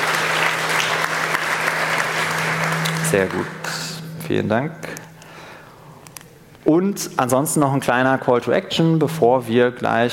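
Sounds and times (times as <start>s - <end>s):
audience applauding at a talk: 0.0s - 4.1s
speech: 3.1s - 5.0s, 6.7s - 10.1s.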